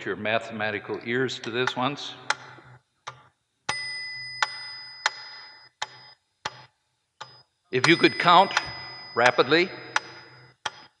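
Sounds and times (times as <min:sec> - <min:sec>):
speech: 0:00.0 - 0:02.3, 0:07.7 - 0:09.8
bell struck with a bright metallic ringing tone: 0:03.7 - 0:06.2, 0:07.3 - 0:10.6.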